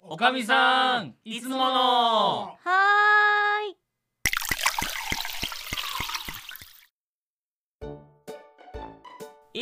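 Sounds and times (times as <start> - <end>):
speech: 0.1 - 3.8
hot water poured into a glass: 4.3 - 6.9.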